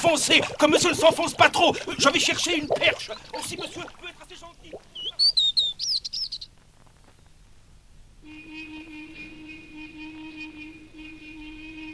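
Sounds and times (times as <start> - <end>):
speech: 0.0 - 4.2
small birds chirping and trilling: 2.0 - 7.4.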